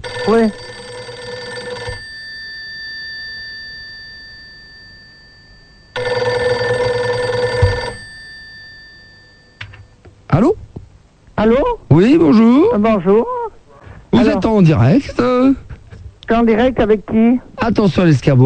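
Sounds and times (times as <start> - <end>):
telephone line ringing while a call is being placed: 0.0 - 5.2, 5.9 - 10.0
speech: 0.3 - 0.7, 11.4 - 13.3, 14.5 - 15.6, 16.3 - 18.4.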